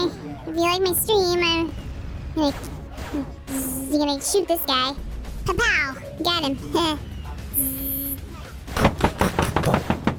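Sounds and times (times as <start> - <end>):
speech: 0.4 - 1.8, 2.4 - 7.8
brief electronic tone: 7.5 - 8.2
loud forceful knocking on a door: 8.8 - 10.1.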